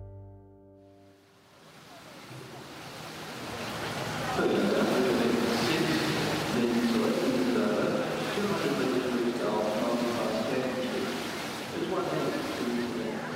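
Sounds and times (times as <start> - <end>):
splashing water in an indoor swimming pool: 1.3 - 13.3
indistinct voices: 4.0 - 13.3.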